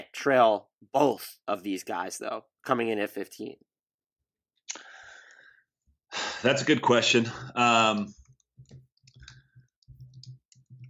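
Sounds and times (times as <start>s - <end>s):
speech: 0.2s - 3.7s, 6.4s - 8.8s
rapid furious typing on a keyboard: 7.9s - 10.8s.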